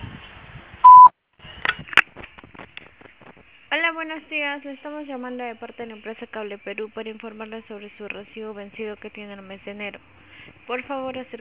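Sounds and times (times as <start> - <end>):
voicemail recording beep on a phone line: 0.8 - 1.1
speech: 3.7 - 11.4.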